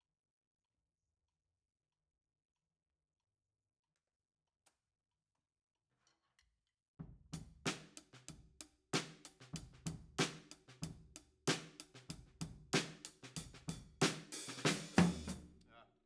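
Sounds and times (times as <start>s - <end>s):
drum kit overheads: 7.4s - 15.6s.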